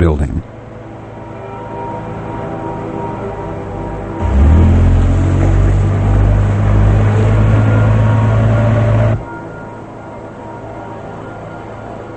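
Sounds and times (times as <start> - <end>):
speech: 0.0 - 0.5
pickup truck engine rumbling: 3.0 - 9.4.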